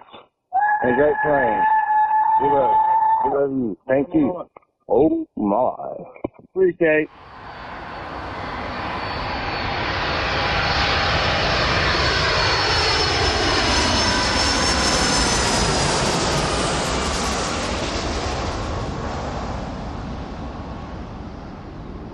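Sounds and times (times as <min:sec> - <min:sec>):
speech: 0:00.8 - 0:01.8, 0:02.4 - 0:07.4
airplane engine roaring with jet-like whine as aircraft taxis or arrives: 0:05.8 - 0:22.1.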